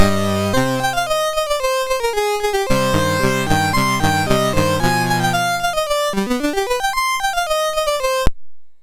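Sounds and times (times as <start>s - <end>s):
violin: 0.0s - 1.5s, 2.7s - 6.7s
MOS6581R3 sound chip synthesizer: 0.0s - 8.3s.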